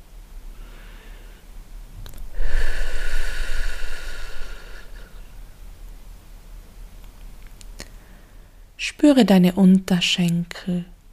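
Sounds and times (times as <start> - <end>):
slow breathing in and out: 0.5 - 1.5, 2.3 - 5.5, 7.8 - 8.7
low rumble: 2.0 - 5.6
speech: 9.0 - 10.9.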